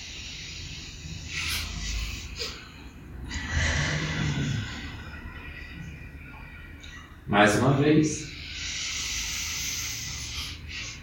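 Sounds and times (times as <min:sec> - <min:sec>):
deep airy inhalations: 0:00.0 - 0:06.0, 0:08.2 - 0:11.0
speech: 0:07.3 - 0:08.4.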